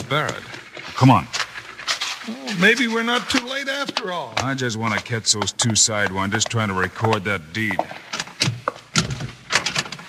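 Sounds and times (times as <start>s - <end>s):
speech: 0.1s - 1.4s, 2.3s - 8.5s
locked door rattling as it is pushed and shaken: 8.2s - 10.0s.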